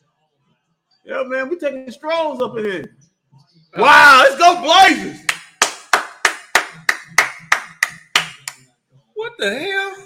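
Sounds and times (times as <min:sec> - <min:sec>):
speech: 0:01.0 - 0:03.1, 0:03.7 - 0:05.2, 0:09.4 - 0:10.0
hands clapping: 0:05.2 - 0:08.6.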